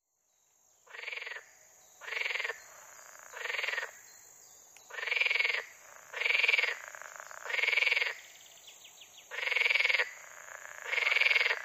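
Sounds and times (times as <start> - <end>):
water frog pulsed rattling croaks: 0.9 - 1.4, 2.0 - 4.0, 4.9 - 8.2, 9.3 - 11.6.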